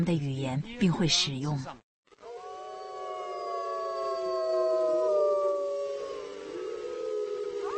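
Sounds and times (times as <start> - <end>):
speech: 0.0 - 1.8
pack of wolves howling in chorus: 2.2 - 7.7.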